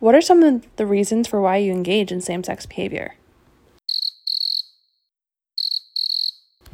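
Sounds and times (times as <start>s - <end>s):
speech: 0.0s - 3.2s
cricket chirping: 3.9s - 4.8s, 5.6s - 6.5s.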